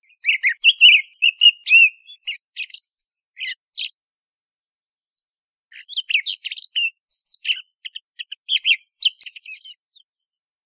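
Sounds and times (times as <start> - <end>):
song thrush birdsong in Spain: 0.0 - 10.6.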